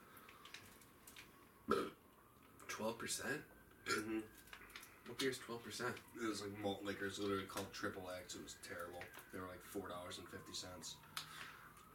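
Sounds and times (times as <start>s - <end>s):
forced burp: 1.7s - 2.0s, 3.8s - 4.3s
speech: 2.8s - 4.5s, 5.1s - 11.3s.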